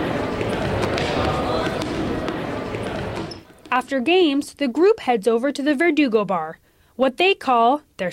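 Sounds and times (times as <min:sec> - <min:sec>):
overlapping voices: 0:00.0 - 0:03.4
dodgeballs thumping, slapping and bouncing during a dodgeball game: 0:00.0 - 0:03.9
crowd noise: 0:00.0 - 0:04.0
speech: 0:03.7 - 0:08.1.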